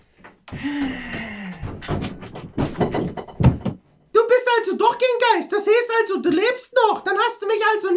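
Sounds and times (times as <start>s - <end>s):
person walking into a closed door: 0.0s - 3.8s
scattered bumps and rattles: 0.0s - 4.0s
speech: 0.5s - 1.1s, 5.0s - 7.9s.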